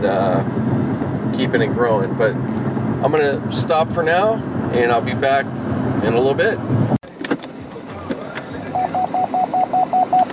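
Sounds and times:
speech: 0:00.0 - 0:00.6, 0:01.4 - 0:06.8
electronic beeping of short identical high tones: 0:08.7 - 0:10.3.

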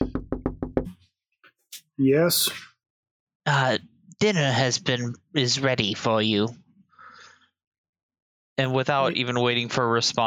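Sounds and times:
firm knocking on a door: 0:00.0 - 0:00.9
speech: 0:01.7 - 0:02.7, 0:03.4 - 0:06.6, 0:08.6 - 0:10.2.

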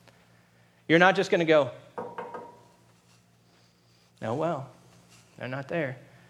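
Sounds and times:
speech: 0:00.9 - 0:01.8, 0:04.2 - 0:04.8, 0:05.4 - 0:06.1
knocks on a wooden surface: 0:02.0 - 0:02.6.

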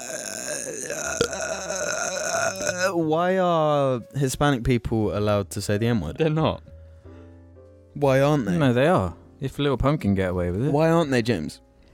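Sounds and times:
long loud throaty burp into a microphone: 0:00.0 - 0:03.0
speech: 0:02.5 - 0:06.7, 0:08.0 - 0:11.6.

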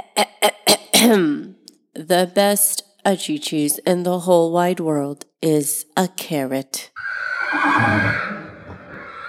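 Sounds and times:
speech: 0:00.2 - 0:01.4, 0:02.0 - 0:08.4
horse neighing: 0:07.0 - 0:09.2.

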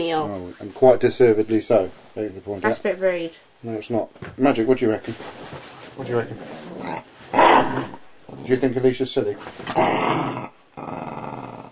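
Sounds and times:
speech: 0:00.0 - 0:11.1
dogs growling: 0:06.0 - 0:08.7, 0:09.6 - 0:11.7.

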